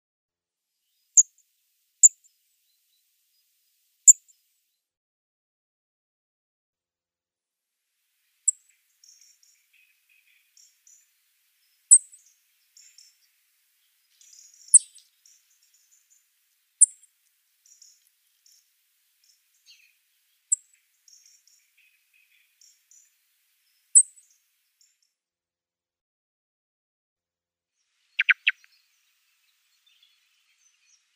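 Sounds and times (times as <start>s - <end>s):
song thrush calling: 8.5s - 24.5s, 28.1s - 31.1s.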